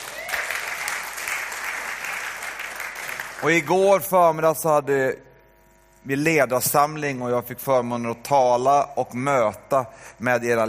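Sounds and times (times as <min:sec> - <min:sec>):
audience applause: 0:00.0 - 0:03.6
speech: 0:03.4 - 0:05.3, 0:06.0 - 0:10.6.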